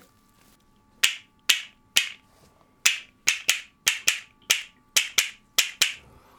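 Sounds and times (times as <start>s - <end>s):
wooden castanet clicks from new mountain cherry wood castanets: 1.0s - 2.2s, 2.9s - 6.0s.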